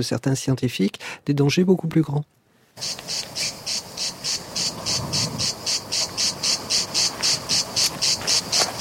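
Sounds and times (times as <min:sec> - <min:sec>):
speech: 0:00.0 - 0:03.6
cicada singing: 0:02.8 - 0:08.8.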